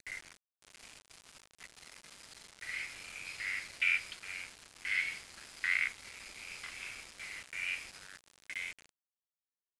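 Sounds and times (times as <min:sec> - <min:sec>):
steady background noise: 0:00.1 - 0:08.9
frog calling in short bursts: 0:02.6 - 0:08.8.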